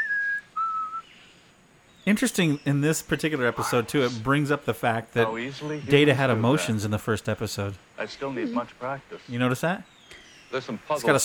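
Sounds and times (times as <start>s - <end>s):
person whistling two thin steady notes: 0.0s - 1.0s
speech: 2.0s - 11.2s.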